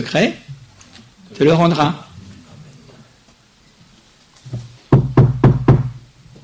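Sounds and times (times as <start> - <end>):
speech: 0.0 - 0.4, 1.3 - 2.1
firm knocking on a door: 4.9 - 6.0.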